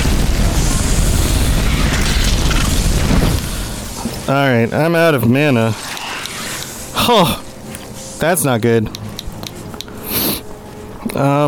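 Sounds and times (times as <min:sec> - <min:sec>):
glowing creature exploding in a video game: 0:00.0 - 0:05.5
speech: 0:04.3 - 0:05.9, 0:07.1 - 0:07.5, 0:08.2 - 0:09.0, 0:11.2 - 0:11.4.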